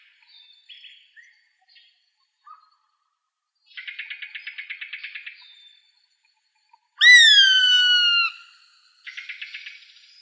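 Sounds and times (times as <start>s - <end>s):
gray hawk calling in Arizona: 7.0s - 8.4s.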